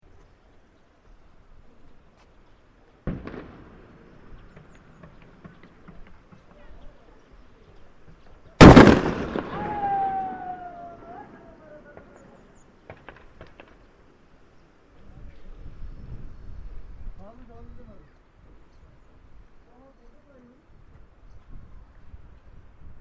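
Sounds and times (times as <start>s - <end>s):
firecrackers in Nepal: 3.0s - 6.7s, 8.0s - 14.0s.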